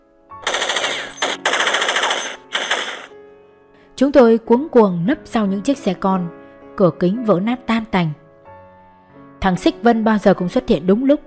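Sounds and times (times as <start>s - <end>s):
automatic gunfire fired in a volley: 0.4s - 3.1s
speech: 4.0s - 8.2s, 9.4s - 11.2s.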